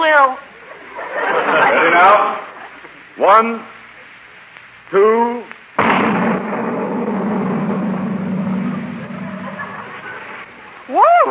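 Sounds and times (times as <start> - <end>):
speech: 0.2 - 0.5, 1.9 - 2.4, 3.2 - 3.8, 4.9 - 5.6
laughter: 0.6 - 3.1, 8.7 - 10.6
loud cannon blast: 5.8 - 10.4.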